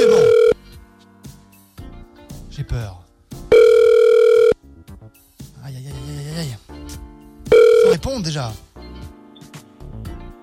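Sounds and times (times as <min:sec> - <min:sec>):
telephone dial tone: 0:00.0 - 0:00.6, 0:03.5 - 0:04.6, 0:07.5 - 0:08.0
speech: 0:08.2 - 0:08.7.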